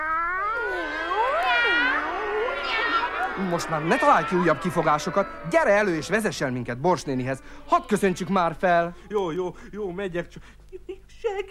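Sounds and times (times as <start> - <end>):
cat meowing: 0.0 - 4.6
speech: 3.4 - 11.5.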